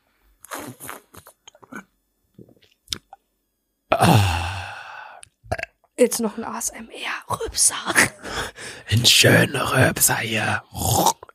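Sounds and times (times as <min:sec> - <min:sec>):
loud sip of a drink made noisy for ASMR: 0:00.4 - 0:01.4
speech: 0:00.7 - 0:01.0, 0:06.0 - 0:11.1
loud voiced breathy exhale after the swallow: 0:04.0 - 0:05.2.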